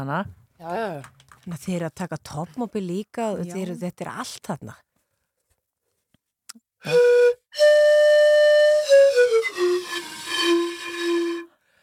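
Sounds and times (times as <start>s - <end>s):
speech: 0.0s - 4.9s, 6.8s - 8.2s
breathy pan flute playing: 6.8s - 11.6s.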